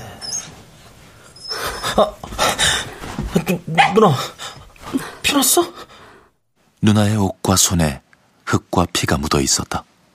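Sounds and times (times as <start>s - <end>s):
puppy whimpering in high-pitched whines: 0.0s - 2.4s
speech: 2.0s - 2.2s, 3.5s - 5.8s, 6.8s - 9.9s.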